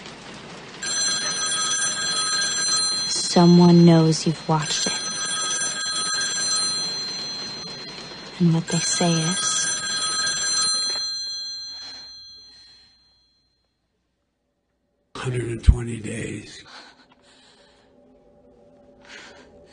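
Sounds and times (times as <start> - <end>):
telephone ringing: 0.8 - 13.7
speech: 3.4 - 4.8, 8.4 - 9.5, 15.3 - 16.7.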